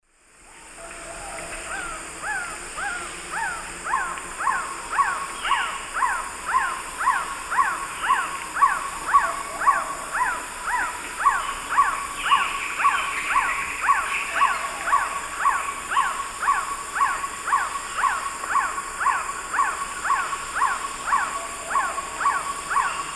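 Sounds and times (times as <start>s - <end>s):
Trogon melanurus song in the Eastern Lowlands of South America: 0.5s - 23.1s.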